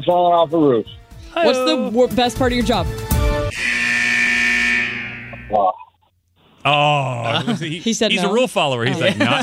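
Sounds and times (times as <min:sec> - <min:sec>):
speech: 0:00.0 - 0:03.0, 0:05.5 - 0:05.8, 0:06.6 - 0:09.4
game show buzzer: 0:03.5 - 0:05.5
laughter: 0:06.9 - 0:09.4.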